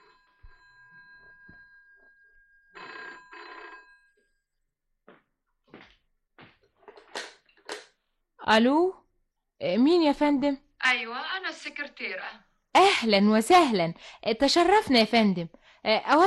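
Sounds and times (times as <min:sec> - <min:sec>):
telephone ringing: 0:00.0 - 0:04.6
speech: 0:08.5 - 0:09.0, 0:09.6 - 0:16.2.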